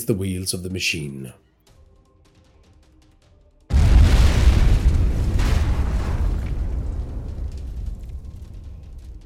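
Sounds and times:
speech: 0.0s - 1.5s
fire-pack bomb exploding against a ballista: 3.7s - 9.2s.

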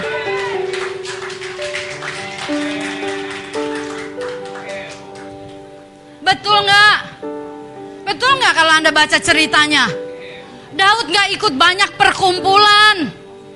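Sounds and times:
audience applauding: 0.0s - 5.7s
keyboard holding sustained chords: 0.0s - 13.5s
speech: 8.5s - 10.0s, 10.8s - 13.2s.

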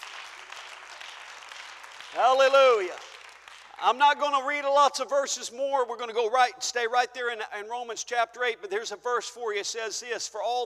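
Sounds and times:
crowd clapping: 0.0s - 4.2s
speech: 2.1s - 3.0s, 3.8s - 10.6s.

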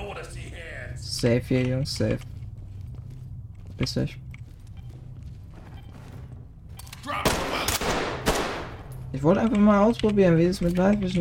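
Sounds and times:
speech: 1.2s - 2.3s, 3.8s - 4.2s, 9.1s - 11.2s
automatic gunfire in a tactical shooter video game: 7.3s - 8.8s.

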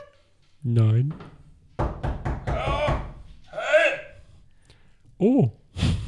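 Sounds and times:
speech: 0.6s - 1.3s, 5.2s - 5.6s
loud knocks on a door: 1.1s - 3.4s
brief voiced exclamation: 2.5s - 4.3s.

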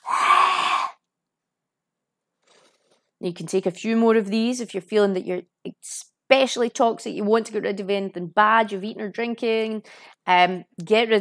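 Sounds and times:
forceful breath exhaled in yoga lion pose: 0.0s - 1.0s
speech: 3.2s - 11.1s.

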